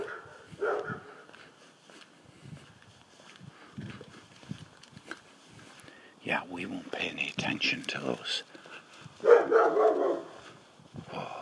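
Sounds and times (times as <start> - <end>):
large dog barking: 0.0 - 1.2, 9.2 - 10.4
speech: 6.3 - 8.5.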